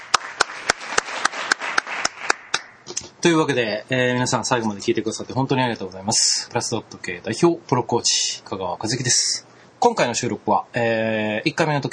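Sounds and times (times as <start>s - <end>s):
audience applause: 0.0s - 2.7s
speech: 3.2s - 11.9s.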